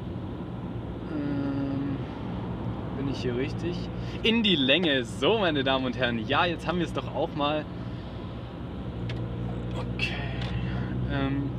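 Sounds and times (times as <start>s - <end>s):
car engine droning: 0.0s - 11.5s
road traffic rumble: 0.0s - 11.5s
speech: 3.1s - 7.8s.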